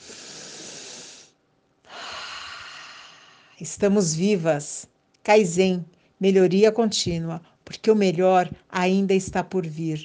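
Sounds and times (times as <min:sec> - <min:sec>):
slow deep breath in a guided breathing exercise: 0:00.0 - 0:03.6
speech: 0:03.6 - 0:10.0.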